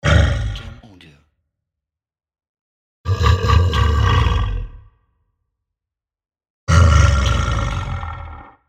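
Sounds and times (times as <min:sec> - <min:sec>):
monster growling: 0:00.0 - 0:01.0, 0:03.1 - 0:04.9, 0:06.7 - 0:08.6.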